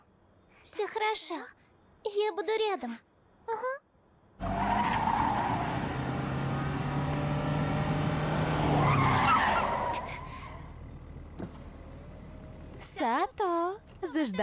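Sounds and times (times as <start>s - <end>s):
speech: 0.8s - 3.8s, 13.0s - 14.4s
car tires screeching in a skid: 4.4s - 12.8s
car engine rumbling and idling: 4.4s - 13.0s.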